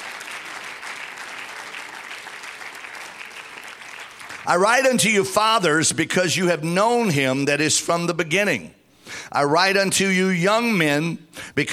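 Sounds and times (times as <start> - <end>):
roomful of people clapping in applause: 0.0 - 4.6
speech: 4.4 - 11.7.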